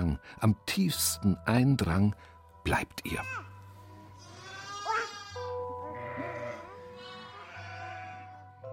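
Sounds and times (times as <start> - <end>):
speech: 0.2 - 3.5
sheep bleating: 4.2 - 8.4.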